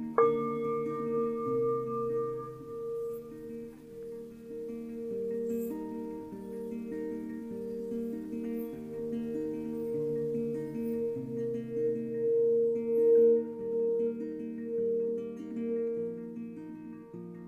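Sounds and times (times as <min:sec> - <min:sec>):
Tibetan singing bowl humming as a velvet-covered stick circles its outside: 0:00.1 - 0:16.3
Tibetan singing bowl struck: 0:00.2 - 0:11.5.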